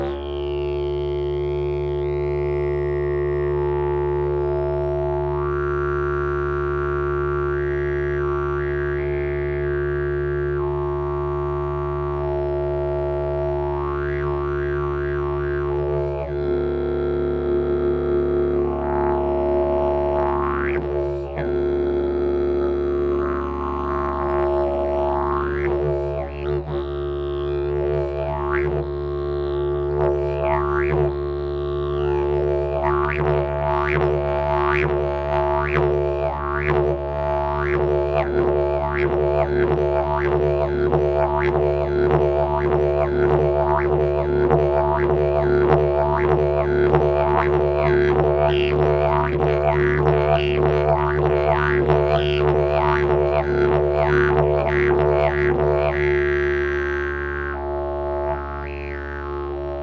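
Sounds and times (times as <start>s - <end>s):
didgeridoo: 0.0s - 59.8s.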